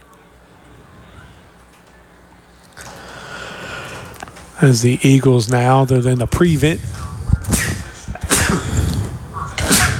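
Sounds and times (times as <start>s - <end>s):
short intake of breath: 2.8s - 4.4s, 6.8s - 9.6s
speech: 4.6s - 7.0s
sharp loud breathy sneeze: 7.6s - 9.9s.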